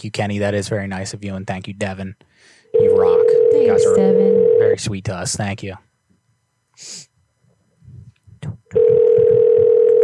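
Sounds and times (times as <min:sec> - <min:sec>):
speech: 0:00.0 - 0:05.9
sharp breathy burst: 0:02.3 - 0:02.7
telephone ringing tone on a call: 0:02.8 - 0:04.8, 0:08.8 - 0:10.0
soft low thumps: 0:07.8 - 0:09.8.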